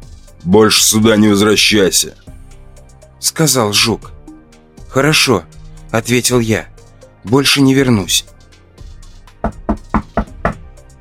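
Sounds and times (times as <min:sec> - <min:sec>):
speech: 0:00.4 - 0:02.3, 0:03.2 - 0:04.2, 0:05.0 - 0:08.3
knocking on an apartment door: 0:09.4 - 0:10.7.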